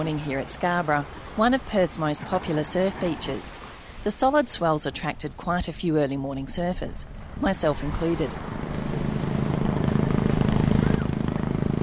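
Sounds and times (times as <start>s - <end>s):
speech: 0.0s - 8.6s
shark patrol helicopter rotor drone hovering over a surf beach in Perth: 7.4s - 11.8s.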